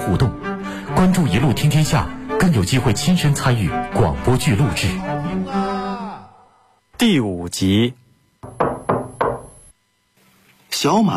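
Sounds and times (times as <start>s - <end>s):
speech: 0.1s - 0.4s, 1.0s - 5.6s, 7.0s - 8.0s, 10.8s - 11.1s
polite firm knocking on a wooden door: 8.4s - 9.6s.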